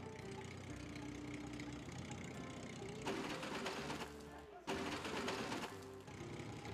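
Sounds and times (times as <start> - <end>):
video game hot rod tractor engine idling and revving: 0.0 - 6.7.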